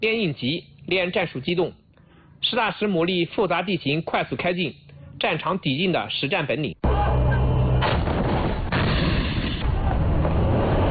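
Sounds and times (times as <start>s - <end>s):
speech: 0.0s - 1.8s, 2.4s - 7.0s
live-fire shooting from armored vehicles at a firing range: 7.8s - 10.9s.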